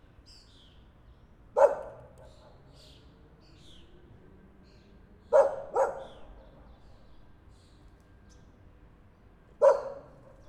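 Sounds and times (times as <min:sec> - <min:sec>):
dog barking: 0:01.6 - 0:02.6, 0:05.3 - 0:06.4, 0:09.6 - 0:10.4.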